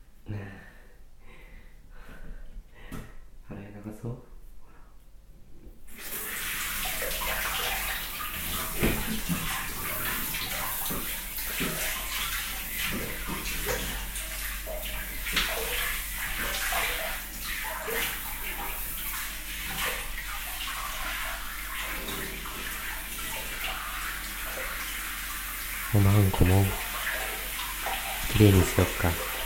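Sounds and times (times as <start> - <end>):
speech: 4.0 - 4.3, 26.0 - 26.8, 28.4 - 29.3
shower water spraying onto a person's body: 5.9 - 29.4.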